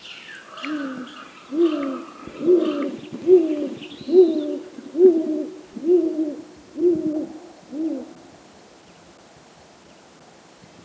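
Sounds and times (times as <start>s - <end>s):
Great Gray Owl full call: 0.0s - 8.2s.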